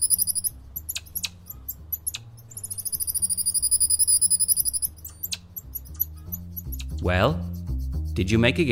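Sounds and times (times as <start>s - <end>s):
captive Goeldi's marmoset calls at a zoo in Dublin: 0.0s - 7.0s
low background tones: 0.0s - 7.5s
speech: 7.0s - 7.5s, 8.2s - 8.7s.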